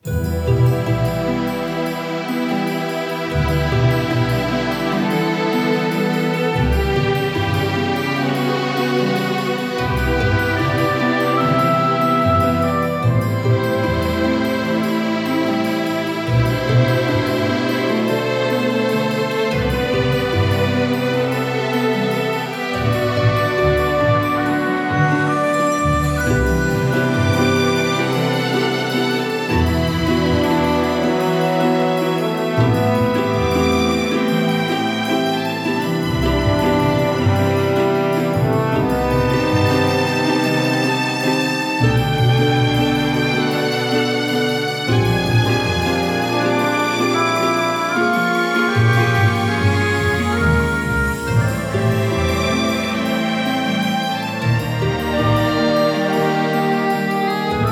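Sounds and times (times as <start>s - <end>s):
strings and woodwinds: 0.0s - 57.7s
violin melody in E minor for game menu: 0.0s - 57.7s.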